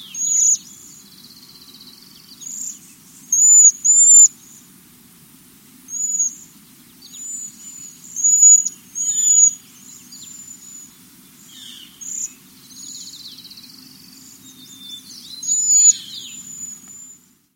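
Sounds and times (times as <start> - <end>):
Cedar Waxwing calling in early spring: 0.1 - 4.6, 5.9 - 17.2.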